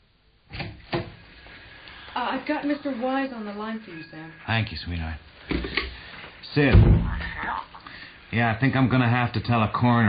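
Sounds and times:
speech: 0:02.3 - 0:05.8, 0:06.6 - 0:07.7, 0:08.3 - 0:10.0
door shutting with a thud: 0:06.6 - 0:07.3.

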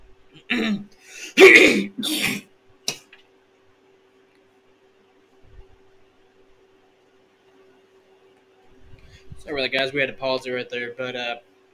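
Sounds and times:
person clearing throat to shift something stuck in it: 0:00.4 - 0:03.1
speech: 0:00.5 - 0:02.2, 0:09.7 - 0:11.5.

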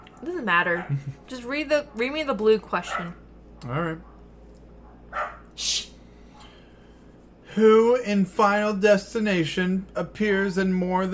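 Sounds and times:
speech: 0:00.2 - 0:04.1, 0:05.1 - 0:05.9, 0:07.6 - 0:11.1
dog barks: 0:02.9 - 0:04.2, 0:04.8 - 0:05.6.

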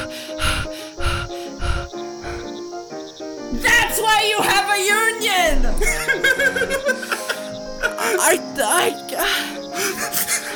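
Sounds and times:
person imitating shaky trembling breathing under their breath: 0:00.0 - 0:03.0, 0:07.0 - 0:10.5
speech: 0:03.5 - 0:07.1, 0:08.1 - 0:10.3
laughter: 0:05.8 - 0:10.5.

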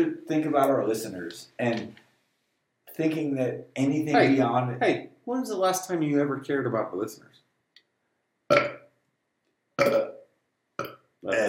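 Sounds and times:
speech: 0:00.0 - 0:02.0, 0:03.0 - 0:07.4, 0:11.2 - 0:11.4
loud throaty burps: 0:08.5 - 0:08.9, 0:09.8 - 0:11.4.

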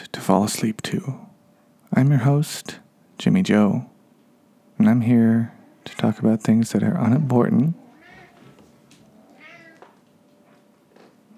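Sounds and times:
speech: 0:00.3 - 0:01.3, 0:02.0 - 0:03.9, 0:04.8 - 0:07.8
big male cat meowing: 0:07.8 - 0:10.0.

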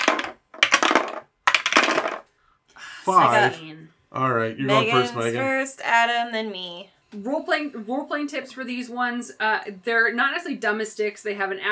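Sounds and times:
red and black dice rolled on a hard table: 0:00.0 - 0:02.3
speech: 0:03.1 - 0:11.6.

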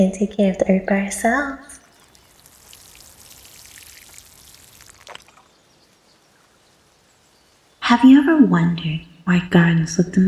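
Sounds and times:
speech: 0:00.0 - 0:01.8, 0:07.9 - 0:10.2
water splash: 0:01.9 - 0:05.6
water pouring and pattering onto flowers while watering: 0:01.9 - 0:07.8.

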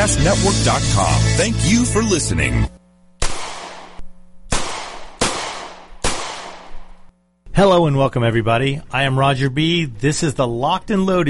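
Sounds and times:
speech: 0:00.0 - 0:02.8, 0:07.6 - 0:11.2
gunshots fired at targets: 0:03.2 - 0:07.0.

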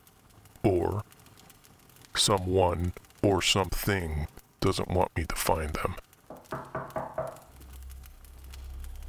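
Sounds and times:
speech: 0:00.6 - 0:01.2, 0:02.2 - 0:06.1
firm knocks on a wooden door: 0:06.3 - 0:07.6
low rumbling hum: 0:06.3 - 0:09.0.

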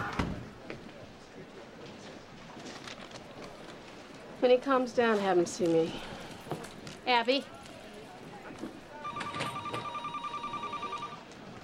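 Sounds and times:
murmuring in a busy room: 0:00.0 - 0:11.6
speech: 0:04.4 - 0:06.2, 0:07.1 - 0:07.6
telephone ringing with a trilling electronic tone: 0:09.0 - 0:11.3.

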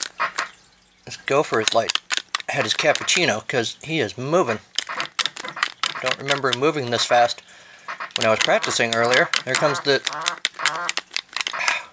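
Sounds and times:
speech: 0:01.0 - 0:04.7, 0:06.0 - 0:07.5, 0:08.2 - 0:10.4
cartoonish electronic video game duck quacking: 0:04.8 - 0:07.3, 0:07.9 - 0:11.7.

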